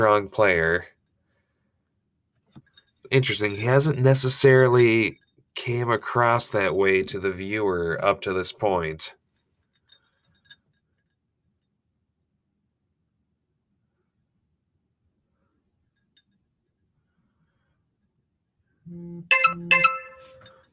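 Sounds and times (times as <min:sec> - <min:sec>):
speech: 0:00.0 - 0:00.9, 0:03.1 - 0:09.2, 0:19.2 - 0:20.0
phone notification tone for a social media alert: 0:18.9 - 0:20.6.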